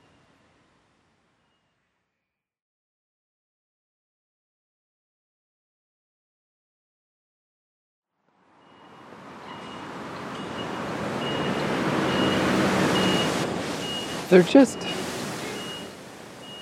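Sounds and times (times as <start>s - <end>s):
traffic rumble: 8.4s - 16.6s
bus beeping at a traffic light on the outskirts of Taipei: 8.6s - 16.6s
speech: 14.3s - 15.0s.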